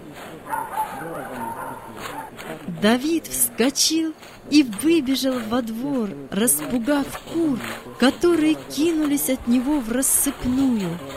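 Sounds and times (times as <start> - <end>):
indistinct men's voices murmuring: 0.0 - 11.1
dog barking: 0.4 - 2.3
speech: 0.4 - 11.1.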